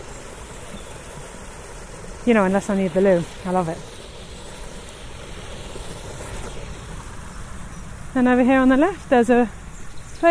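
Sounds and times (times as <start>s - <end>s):
water pouring over a small weir: 0.0s - 7.7s
speech: 2.2s - 4.0s, 8.2s - 9.6s.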